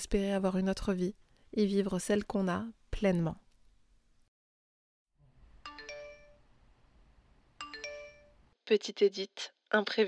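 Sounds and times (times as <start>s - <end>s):
speech: 0.0s - 3.4s, 8.7s - 10.0s
faint hiss: 0.0s - 4.3s, 5.2s - 8.6s
phone notification ringtone announcing a new email: 5.6s - 6.5s, 7.6s - 8.4s.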